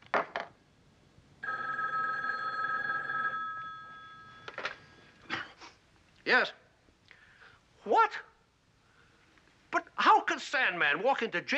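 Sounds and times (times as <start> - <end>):
telephone ringing with a bright electronic trill: 1.4 - 4.7
speech: 6.3 - 6.6, 7.8 - 8.3, 10.4 - 11.5.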